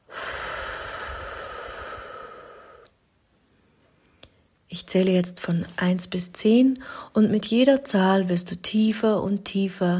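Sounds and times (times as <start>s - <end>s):
deep breath in and out during a guided relaxation exercise: 0.0s - 2.9s
speech: 4.7s - 9.9s.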